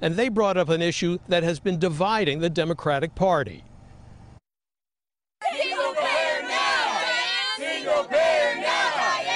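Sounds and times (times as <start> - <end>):
speech: 0.0 - 3.7
crowd of protesters shouting and yelling: 5.4 - 9.3.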